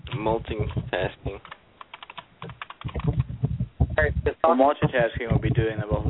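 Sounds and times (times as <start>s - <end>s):
rapid typing on a computer keyboard: 0.1s - 3.3s
speech: 0.2s - 1.4s, 4.2s - 6.0s.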